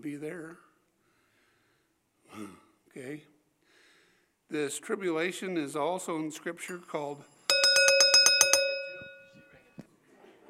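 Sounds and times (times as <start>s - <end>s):
speech: 0.0s - 0.7s, 2.3s - 3.3s, 4.5s - 7.3s
bright new bell ringing: 7.5s - 9.5s.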